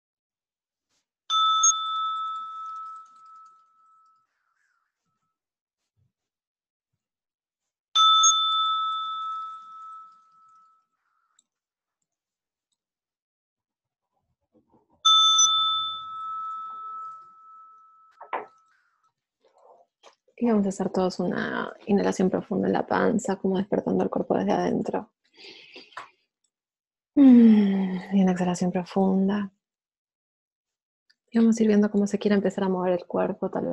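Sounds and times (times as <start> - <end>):
bell struck with clear resonant ring: 1.3 - 4.2, 8.0 - 10.8, 15.0 - 18.6
speech: 20.4 - 26.0, 27.2 - 29.6, 31.3 - 33.7.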